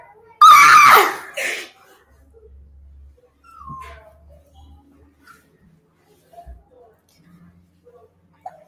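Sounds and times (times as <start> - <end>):
woman high-pitched scream: 0.4 - 1.5.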